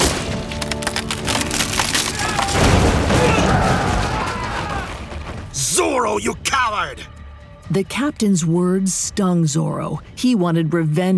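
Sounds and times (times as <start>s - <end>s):
heavy wooden bunk bed collapsing with rumbling crash: 0.0s - 5.6s
wood of heavy bunk bed legs creaking and splintering as they are slashed: 0.0s - 5.6s
debris settling: 0.0s - 5.9s
speech: 6.0s - 11.1s.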